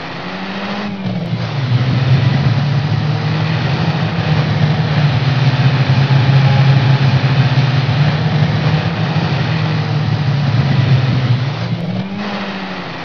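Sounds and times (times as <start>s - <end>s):
Falcon engine running: 0.0s - 13.0s.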